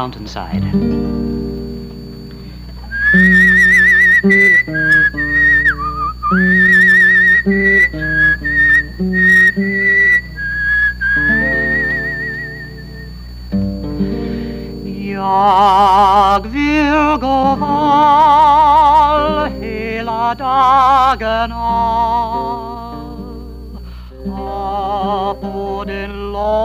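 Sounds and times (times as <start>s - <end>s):
speech: 0.0s - 1.2s, 4.2s - 5.3s, 15.4s - 18.5s, 20.3s - 22.6s
sustained accompanying tones: 0.8s - 26.1s
person whistling a call to a flock on a mountainside: 2.9s - 13.2s.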